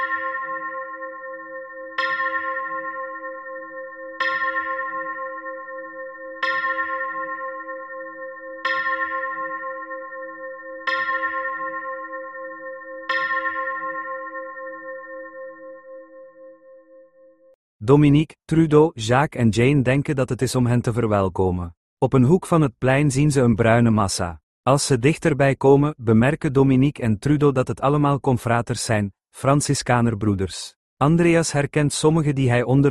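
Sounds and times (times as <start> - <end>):
church bell tolling: 0.0 - 17.4
speech: 17.9 - 32.8.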